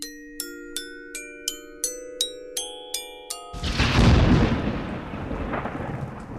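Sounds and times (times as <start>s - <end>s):
rapid run of struck mallet-instrument notes: 0.0s - 4.8s
loud dark roll of thunder rumbling: 3.6s - 6.3s.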